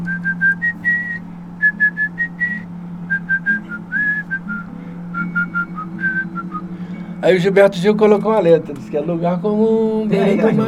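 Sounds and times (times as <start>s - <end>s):
person whistling a lilting melody: 0.0s - 6.7s
low constant hum: 0.0s - 10.6s
speech: 7.2s - 10.6s.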